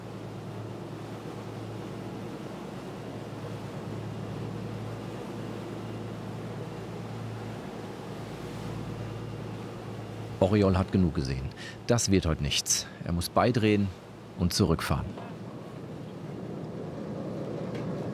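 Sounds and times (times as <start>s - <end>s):
low engine-like hum aboard a fishing boat: 0.0s - 13.1s, 13.9s - 18.1s
rough sea water washing around a fishing boat off Fornells, Menorca: 0.0s - 18.1s
speech: 10.4s - 15.3s.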